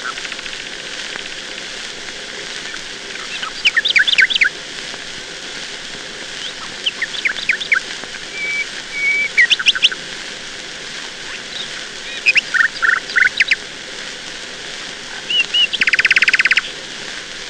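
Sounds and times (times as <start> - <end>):
nightingale song: 2.6 - 4.5, 6.4 - 10.0, 11.2 - 13.6, 15.1 - 16.8.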